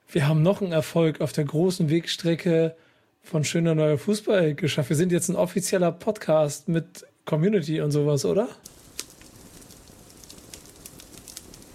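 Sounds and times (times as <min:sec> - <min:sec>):
speech: 0:00.1 - 0:08.7
campfire crackling as marshmallows are warmed over it: 0:08.6 - 0:11.7.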